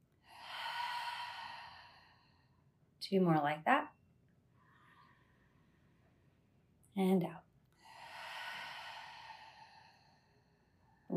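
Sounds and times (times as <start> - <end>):
long soft breath during a guided yoga breathing exercise: 0.2 - 2.8, 4.6 - 6.4, 7.8 - 11.1
speech: 3.0 - 3.8.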